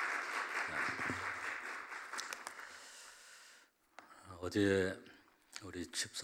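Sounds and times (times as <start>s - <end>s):
audience applause: 0.0s - 2.8s
speech: 4.4s - 6.2s.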